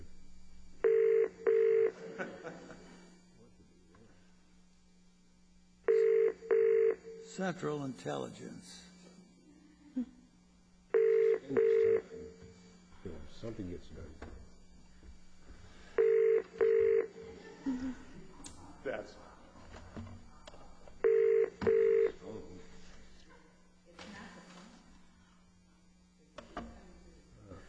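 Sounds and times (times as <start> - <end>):
double-burst electronic telephone ring tones through a phone line: 0.8 - 2.0, 5.9 - 7.2, 10.9 - 12.2, 16.0 - 17.2, 21.0 - 22.2
laughter: 1.9 - 3.2, 17.2 - 18.4
speech: 7.4 - 8.9, 13.4 - 14.3, 18.8 - 19.3.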